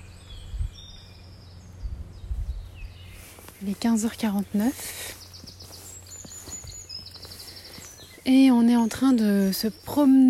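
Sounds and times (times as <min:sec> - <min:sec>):
birds chirping and twittering outdoors: 0:00.0 - 0:10.2
low rumble: 0:00.0 - 0:10.2
noisy rustle: 0:01.7 - 0:08.3
speech: 0:03.6 - 0:05.2, 0:08.3 - 0:10.2.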